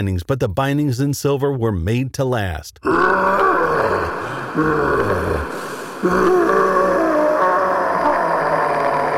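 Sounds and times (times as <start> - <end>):
speech: 0.0 - 6.6
demon screaming and howling: 2.9 - 9.1.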